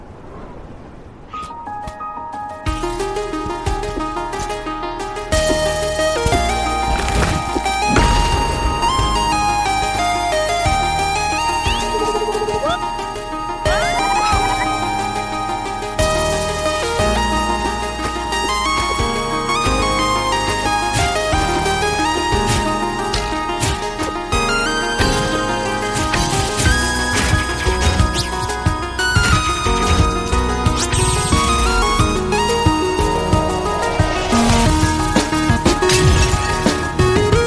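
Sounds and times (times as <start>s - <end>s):
dense bright instrumental video game music: 1.2s - 37.4s.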